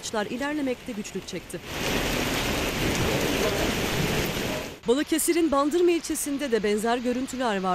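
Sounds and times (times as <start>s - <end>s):
heavy downpour of rain drumming: 0.0s - 7.7s
speech: 0.1s - 4.1s, 4.8s - 7.7s
low rumble of thunder: 1.8s - 4.8s.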